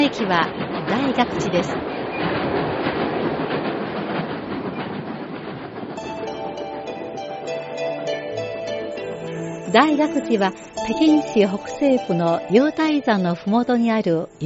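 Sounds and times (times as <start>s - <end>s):
train rolling along with a loud steady rumble: 0.0s - 14.4s
train wheels clacking on rails: 0.0s - 14.4s
speech: 0.1s - 2.4s, 9.7s - 14.4s
gentle melodic music: 6.0s - 14.4s.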